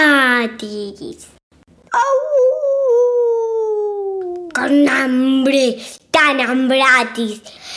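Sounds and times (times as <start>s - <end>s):
speech: 0.4s - 1.4s, 4.6s - 7.7s
person imitating wolf howl: 1.9s - 4.5s.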